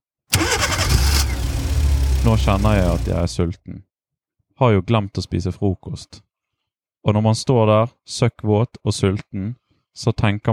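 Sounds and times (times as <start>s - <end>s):
boat engine starting at sea: 0.3s - 3.4s
speech: 2.2s - 3.9s, 4.6s - 6.2s, 7.0s - 10.5s.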